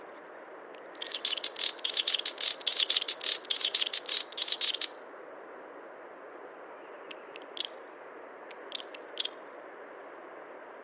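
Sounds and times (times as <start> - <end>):
snipe passing by: 1.0 - 5.0.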